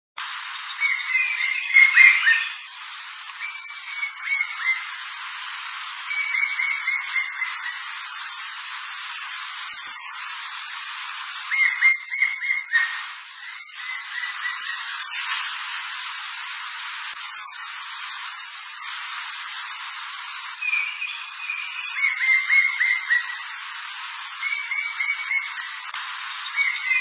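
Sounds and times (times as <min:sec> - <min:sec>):
yellow woodpecker calling: 0:00.8 - 0:02.6, 0:03.4 - 0:05.0, 0:06.0 - 0:08.7, 0:11.4 - 0:15.4, 0:20.6 - 0:23.6, 0:24.4 - 0:26.9.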